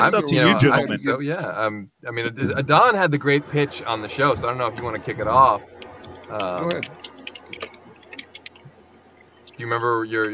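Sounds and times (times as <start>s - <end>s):
speech: 0.0s - 5.7s, 6.3s - 7.2s, 9.6s - 10.3s
typing on a computer keyboard: 4.7s - 10.3s.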